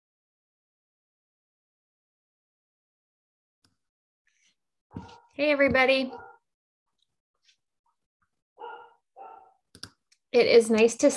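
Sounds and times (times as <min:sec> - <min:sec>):
dog barking: 0:04.9 - 0:05.4, 0:06.0 - 0:06.5, 0:08.6 - 0:09.6
speech: 0:04.9 - 0:06.3, 0:10.3 - 0:11.1.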